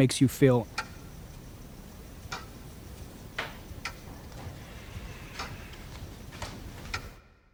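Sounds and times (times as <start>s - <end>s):
speech: 0.0s - 0.8s
soft hiss: 0.0s - 7.5s
recorded clock ticking slightly slower than once per second: 0.6s - 4.6s, 5.3s - 7.2s.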